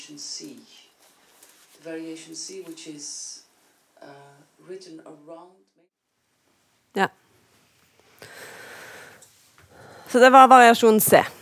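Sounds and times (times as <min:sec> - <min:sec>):
speech: 0:00.0 - 0:00.8, 0:01.8 - 0:03.4, 0:04.0 - 0:05.7, 0:06.9 - 0:07.2, 0:10.1 - 0:11.4
dancers exhaling audibly while performing a dance variation: 0:08.2 - 0:10.2.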